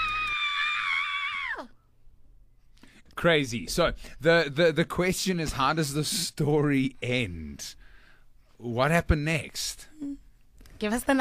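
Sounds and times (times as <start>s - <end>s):
man screaming: 0.0s - 1.7s
speech: 3.2s - 7.8s, 8.6s - 10.2s, 10.8s - 11.1s.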